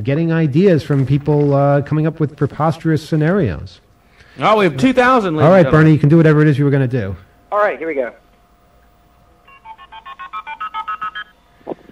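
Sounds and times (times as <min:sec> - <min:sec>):
speech: 0:00.0 - 0:03.8, 0:04.4 - 0:08.2
multi-frequency telephone touch-tone dialing tones: 0:09.5 - 0:11.4.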